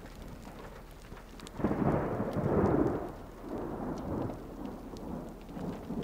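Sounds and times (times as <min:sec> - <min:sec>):
steady rain heard from a stopped vehicle: 0:00.0 - 0:06.0
low rolling thunder during an intensifying storm: 0:01.5 - 0:06.0.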